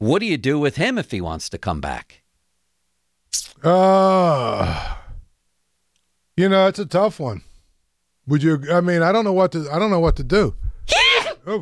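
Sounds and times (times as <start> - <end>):
speech: 0.0 - 2.2, 3.3 - 5.0, 6.4 - 7.5, 8.3 - 11.6
person sneezing: 10.9 - 11.6.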